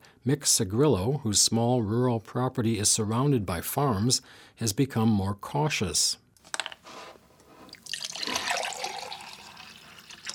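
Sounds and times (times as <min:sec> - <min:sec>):
speech: 0:00.2 - 0:06.2
water poured from a 5-gallon jug into a container: 0:07.4 - 0:10.3.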